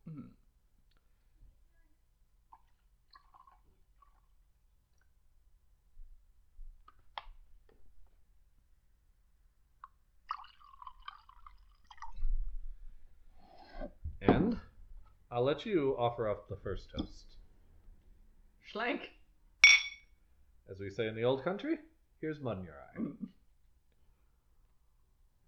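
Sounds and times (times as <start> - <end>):
whiskey pouring into a glass: 2.5 - 4.4, 9.8 - 12.3
small liquid drips: 2.5 - 5.2, 9.8 - 12.3
speech: 15.4 - 17.4, 18.7 - 19.2, 20.7 - 23.4
faint glass clinks: 19.6 - 20.1.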